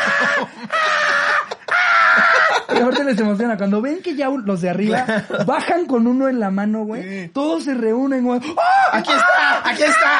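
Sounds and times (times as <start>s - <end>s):
person shrieking imitating screaming chimpanzees: 0.0s - 2.7s, 8.6s - 10.1s
laughter: 0.0s - 3.4s
speech: 0.2s - 0.9s, 2.7s - 10.1s.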